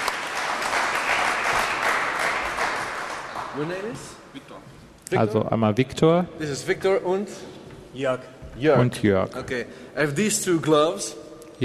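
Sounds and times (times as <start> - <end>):
audience applause at a live show: 0.0 - 4.0
speech: 3.6 - 11.6.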